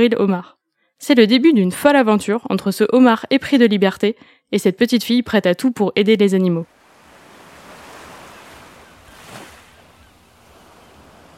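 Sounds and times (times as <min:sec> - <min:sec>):
speech: 0:00.0 - 0:06.8
ocean waves washing onto a shore: 0:06.6 - 0:11.3.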